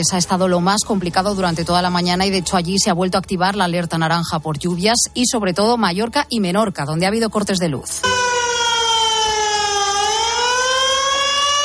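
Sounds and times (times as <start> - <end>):
speech: 0.0 - 8.6
flood warning siren wailing: 8.0 - 11.6.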